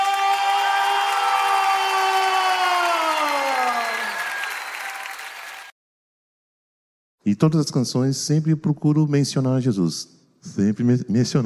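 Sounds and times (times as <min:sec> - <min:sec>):
audience giving loud round of applause: 0:00.0 - 0:05.8
speech: 0:07.3 - 0:11.4.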